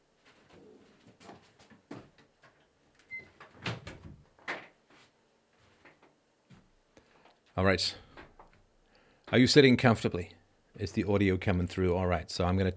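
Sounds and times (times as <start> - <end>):
door rattling and creaking: 3.4 - 4.6
speech: 7.6 - 8.0, 9.3 - 12.7.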